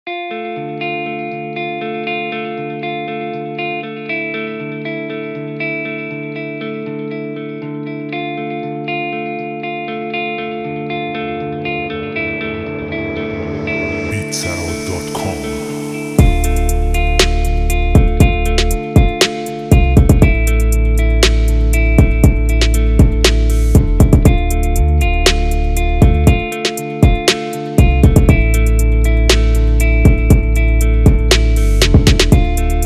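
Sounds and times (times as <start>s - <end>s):
rap rock beat: 10.6s - 32.8s.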